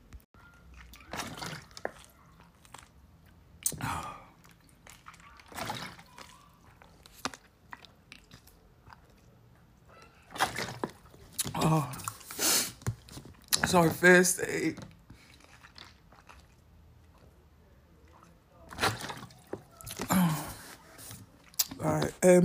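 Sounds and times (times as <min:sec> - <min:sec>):
person gulping and swallowing water: 0:00.7 - 0:06.2, 0:10.3 - 0:14.0, 0:14.6 - 0:17.4, 0:18.1 - 0:22.2
speech: 0:13.7 - 0:14.9, 0:22.2 - 0:22.4.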